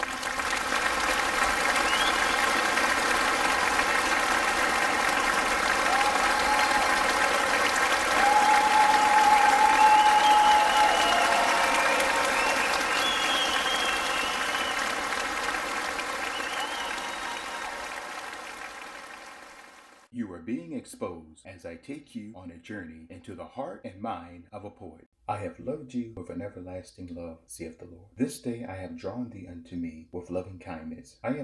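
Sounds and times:
crowd applauding: 0.0 - 20.1
faint tonal whistles: 1.8 - 2.7, 9.4 - 15.0, 16.2 - 17.8
speech: 22.6 - 31.4.

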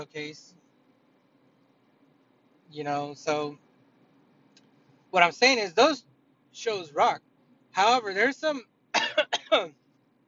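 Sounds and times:
speech: 0.0 - 0.7, 2.7 - 3.6, 5.1 - 9.8
person coughing: 9.0 - 9.7.

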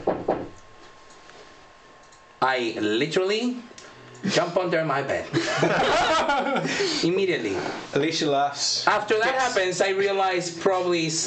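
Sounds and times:
dull hollow knocks on wood: 0.0 - 0.5
speech: 2.4 - 11.2
laughter: 5.3 - 7.1.

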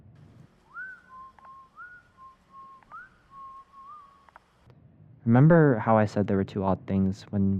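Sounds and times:
person whistling a cheerful tune while passing by at night: 0.7 - 4.2
soft clicks: 1.3 - 1.6, 2.7 - 3.0, 4.0 - 4.8
speech: 5.2 - 7.5.

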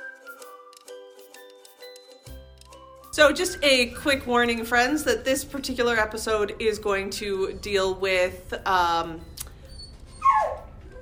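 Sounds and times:
speech: 3.2 - 9.3
dog yelping: 9.6 - 10.9.

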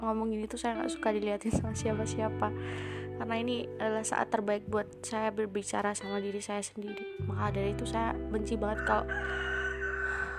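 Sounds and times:
speech: 0.0 - 9.5
rooster crowing: 8.8 - 10.3.

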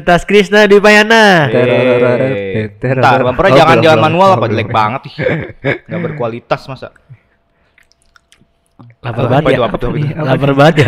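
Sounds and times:
speech: 0.0 - 7.2, 9.0 - 10.8
laughter: 1.5 - 6.4, 10.6 - 10.8
person chewing food while eating: 7.6 - 8.8.

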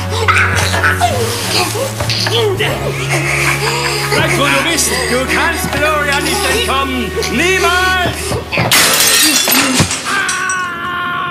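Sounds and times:
laughter: 0.1 - 8.7
speech: 1.5 - 9.2
window glass shattering as someone jumps out through it: 8.5 - 10.8
glass fragments tinkling: 8.7 - 10.8.

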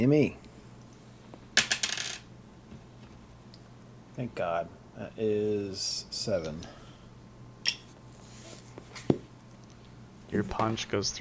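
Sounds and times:
speech: 0.0 - 0.4, 4.2 - 6.8, 10.3 - 11.1
dice rolling onto a hard tabletop: 1.6 - 2.3.

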